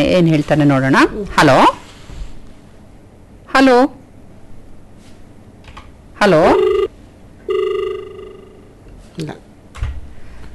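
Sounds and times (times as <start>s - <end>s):
speech: 0.0s - 1.8s, 3.6s - 4.0s, 6.2s - 6.7s, 9.2s - 9.4s
telephone ring tone on a listener call-in line with a faulty connection: 6.4s - 8.8s.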